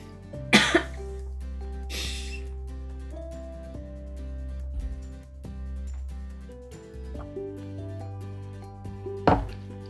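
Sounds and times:
music: 0.0 - 9.8
person coughing from chili spice stuck in the throat: 0.5 - 1.0.

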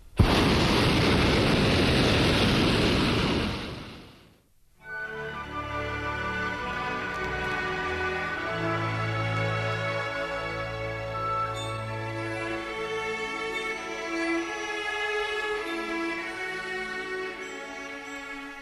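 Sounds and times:
hot air balloon burner blast in flight: 0.0 - 4.4
quiet tonal sound: 4.5 - 18.6.

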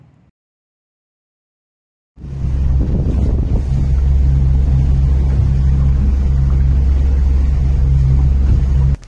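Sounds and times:
boat engine drone: 2.2 - 9.0
heavy wind buffeting the microphone on a boat: 2.2 - 9.0.

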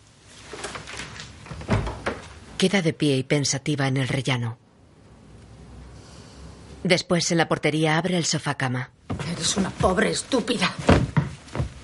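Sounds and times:
hiss: 0.0 - 7.1, 8.9 - 11.8
door closing with a thud: 1.5 - 2.3
speech: 2.6 - 4.6, 6.8 - 11.1.

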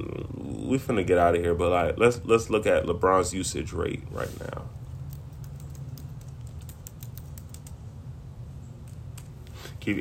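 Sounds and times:
low hum: 0.0 - 9.9
speech: 0.7 - 4.7
typing on a computer keyboard: 5.1 - 7.8.

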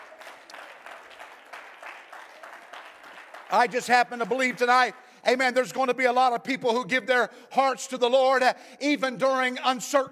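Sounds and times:
congregation clapping in a rhythmic pattern: 0.0 - 5.5
speech: 3.5 - 10.1.

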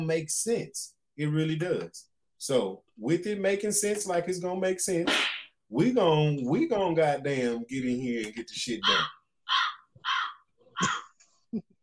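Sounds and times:
speech: 0.0 - 9.2, 10.8 - 11.8
crow cawing inside a house: 8.8 - 11.1.

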